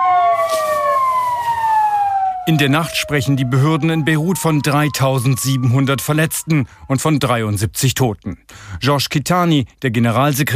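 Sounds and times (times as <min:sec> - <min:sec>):
ambulance and fire engine sirens wailing: 0:00.0 - 0:07.3
low rumble of traffic: 0:00.0 - 0:07.6
speech: 0:02.4 - 0:10.5.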